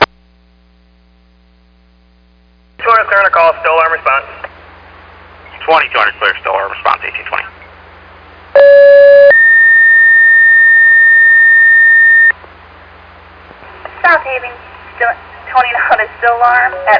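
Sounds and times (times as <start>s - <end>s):
faint radio hiss: 0.0s - 8.5s, 12.4s - 16.9s
radio dispatcher speaking: 2.8s - 4.5s, 5.5s - 7.6s
electronic fire dispatch alert tones: 8.6s - 12.3s.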